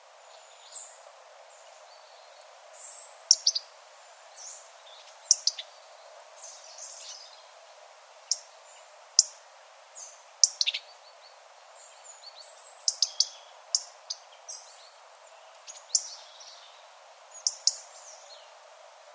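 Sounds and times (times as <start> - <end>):
steady background hiss: 0.0 - 19.1
European robin calling: 1.9 - 3.8, 4.4 - 7.5, 8.2 - 9.4, 10.0 - 18.5.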